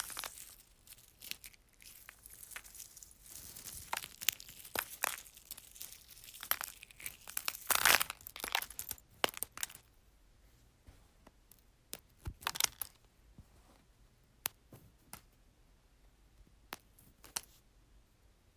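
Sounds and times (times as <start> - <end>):
eggshells crunching: 0.0 - 9.8, 11.9 - 13.0.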